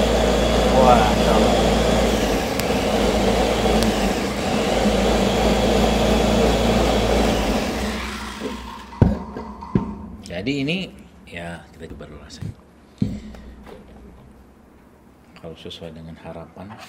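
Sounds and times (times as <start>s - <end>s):
electric blender whirring while mixing honey, ginger and salt: 0.0s - 9.0s
speech: 0.9s - 1.6s, 11.6s - 12.6s, 15.5s - 16.8s.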